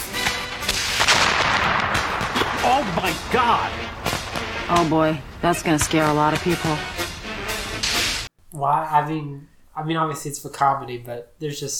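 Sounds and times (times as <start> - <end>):
fireworks booming and crackling: 0.0 - 8.3
speech: 2.7 - 7.0, 8.6 - 11.7.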